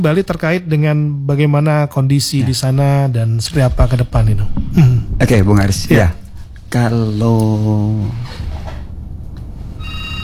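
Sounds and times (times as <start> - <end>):
speech: 0.0 - 8.5
telephone ringing with steady electronic tone: 9.8 - 10.2.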